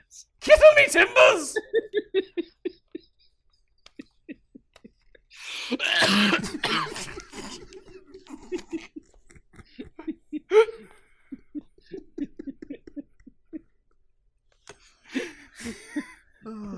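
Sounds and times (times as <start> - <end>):
speech: 0.1 - 2.3, 5.7 - 7.1
laughter: 0.5 - 5.8, 6.4 - 13.9, 15.1 - 16.4
person coughing: 5.7 - 8.7.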